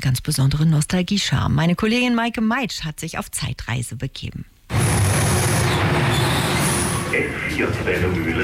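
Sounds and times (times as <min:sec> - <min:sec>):
speech: 0:00.0 - 0:04.6, 0:07.1 - 0:08.4
high wheel squeals of historic S-Bahn carriages: 0:04.7 - 0:08.3
S4 S-Bahn commuter train of historic carriages pulling into station: 0:04.7 - 0:08.4.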